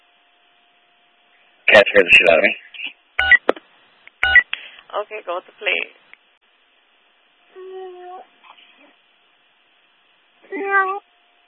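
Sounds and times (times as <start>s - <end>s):
speech: 1.8s - 2.7s, 5.0s - 6.0s, 10.5s - 10.9s
little cat scared by a big dog meowing outdoors in the dark: 10.4s - 11.0s.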